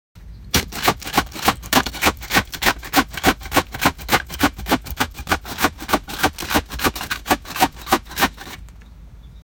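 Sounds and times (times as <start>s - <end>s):
shears cutting a plant in a garden: 0.5s - 8.6s.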